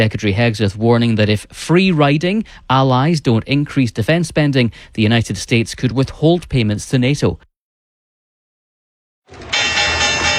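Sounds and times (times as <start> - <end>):
speech: 0.0 - 7.5
Wall Street stock exchange opening bell ringing: 9.3 - 10.3.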